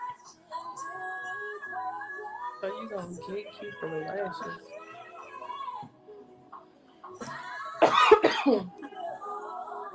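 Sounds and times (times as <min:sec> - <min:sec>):
speech: 0:02.6 - 0:04.7, 0:08.5 - 0:08.8
cough or sneeze: 0:07.8 - 0:08.7.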